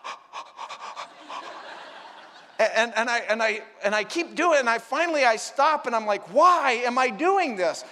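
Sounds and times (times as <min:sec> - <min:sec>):
voice imitating sharp breaths drawn in through a snorkel: 0:00.0 - 0:01.8
laughter: 0:00.7 - 0:02.8
speech: 0:02.6 - 0:07.9.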